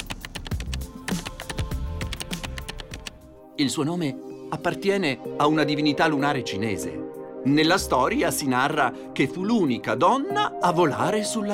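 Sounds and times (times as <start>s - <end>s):
rapid keyboard typing: 0.0s - 3.2s
speech: 3.6s - 11.5s.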